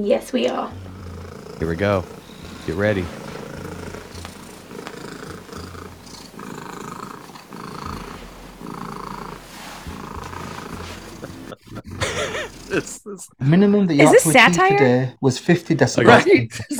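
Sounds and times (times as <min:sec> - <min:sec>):
speech: 0:00.0 - 0:00.9, 0:01.6 - 0:03.2, 0:12.8 - 0:16.7
domestic cat purring loudly: 0:00.3 - 0:13.0
scuffling noise: 0:01.6 - 0:12.8
laughter: 0:02.7 - 0:03.1, 0:10.5 - 0:14.9, 0:15.7 - 0:16.7.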